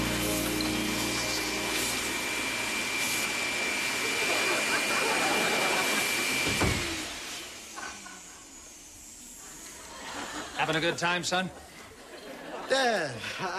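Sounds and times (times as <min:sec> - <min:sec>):
vacuum cleaner running: 0:00.0 - 0:10.5
laughter: 0:03.9 - 0:06.4, 0:09.6 - 0:13.5
speech: 0:10.7 - 0:11.7, 0:12.7 - 0:13.5.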